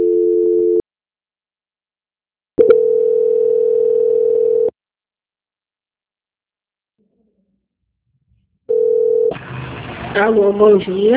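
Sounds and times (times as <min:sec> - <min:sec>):
steady buzzing telephone line tone during a call transfer: 0:00.0 - 0:00.8, 0:02.6 - 0:04.7, 0:08.7 - 0:09.4
speech: 0:10.2 - 0:11.1.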